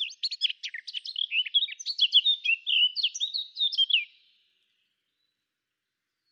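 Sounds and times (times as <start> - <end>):
Eurasian blackcap Sylvia atricapilla warbling song: 0.0 - 4.2.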